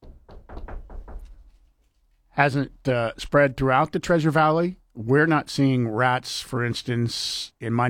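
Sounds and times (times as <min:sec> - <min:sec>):
knocking on a wooden surface: 0:00.0 - 0:01.7
speech: 0:02.4 - 0:07.8.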